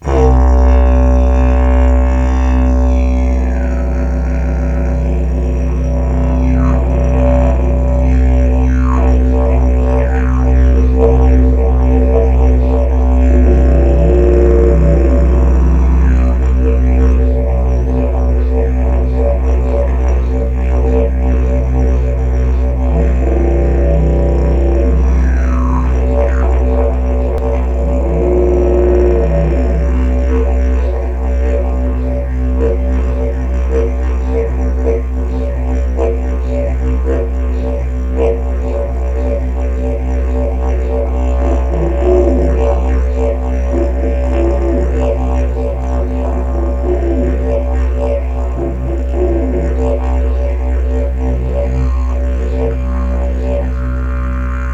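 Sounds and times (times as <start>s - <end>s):
large didgeridoo toot in B at 62Hz: 0.0s - 54.7s.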